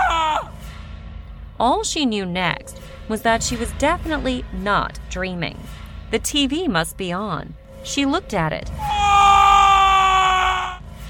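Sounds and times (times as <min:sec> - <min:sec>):
man screaming in terror: 0:00.0 - 0:00.5, 0:08.8 - 0:10.8
speech: 0:01.6 - 0:08.8.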